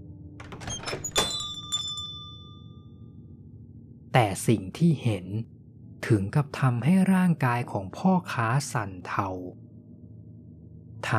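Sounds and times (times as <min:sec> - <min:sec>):
shop door opening with rattle and clunk: 0:00.4 - 0:02.1
bright metallic ringing: 0:01.1 - 0:02.9
speech: 0:04.2 - 0:09.6.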